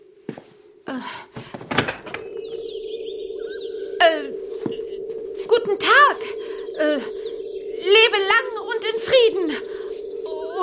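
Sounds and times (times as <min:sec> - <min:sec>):
steady low hum: 0:00.0 - 0:10.6
speech: 0:00.3 - 0:01.2
door opening with clicks and thunks: 0:01.4 - 0:02.4
rising electronic tones: 0:01.7 - 0:10.6.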